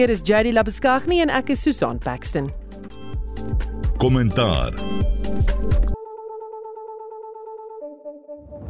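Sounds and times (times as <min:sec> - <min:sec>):
speech: 0:00.0 - 0:06.0
radio show jingle: 0:04.0 - 0:04.9.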